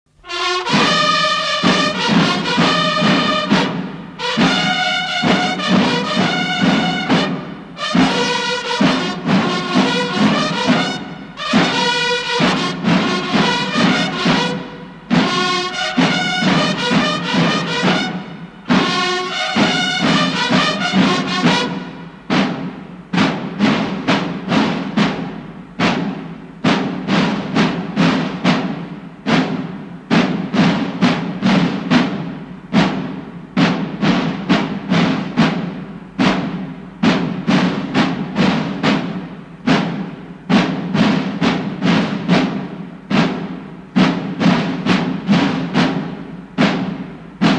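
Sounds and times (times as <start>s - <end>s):
instrumental music: 0.1s - 47.5s.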